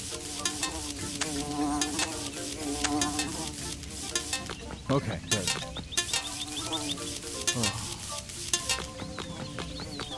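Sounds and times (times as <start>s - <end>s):
wasp buzzing: 0.0s - 10.1s
speech: 4.9s - 5.5s, 7.6s - 7.8s.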